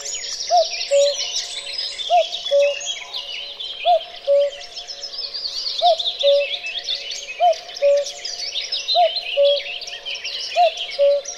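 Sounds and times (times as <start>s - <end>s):
cuckoo calling cu-coo: 0.0s - 1.4s, 2.1s - 3.0s, 3.8s - 4.7s, 5.8s - 6.7s, 7.3s - 8.2s, 8.9s - 9.7s, 10.5s - 11.3s
dense chirping songbirds: 0.0s - 11.3s.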